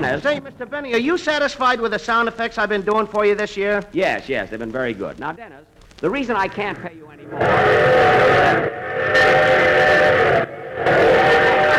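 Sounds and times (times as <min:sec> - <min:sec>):
speech: 0:00.0 - 0:09.6
high-pitched steam train whistle sound effect: 0:07.5 - 0:11.7.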